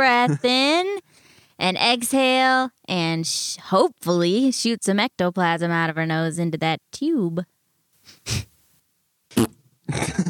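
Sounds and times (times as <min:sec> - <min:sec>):
speech: 0:00.0 - 0:01.0, 0:01.6 - 0:07.5, 0:08.2 - 0:08.5, 0:09.3 - 0:10.2
fart noises: 0:09.3 - 0:10.2.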